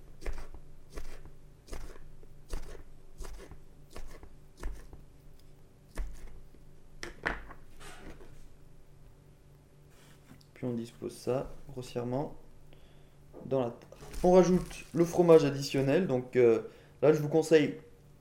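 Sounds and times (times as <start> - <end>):
faint steady hum: 0.0 - 18.1
knife slicing Strasbourg sausages into rounds: 0.1 - 5.0, 5.9 - 6.4
speech: 10.6 - 12.4, 13.5 - 17.9.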